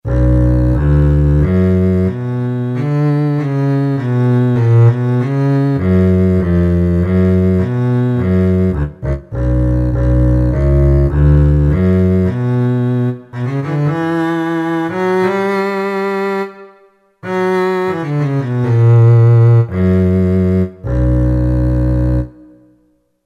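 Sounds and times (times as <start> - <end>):
arco double bass on Kurzweil K2000 orchestral ROM: 0.0 - 16.4, 17.2 - 22.7.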